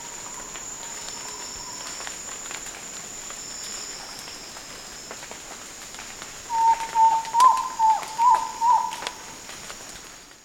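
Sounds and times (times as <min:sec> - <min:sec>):
faint background hiss: 0:00.0 - 0:10.4
frog giving tonal notes: 0:06.5 - 0:09.2.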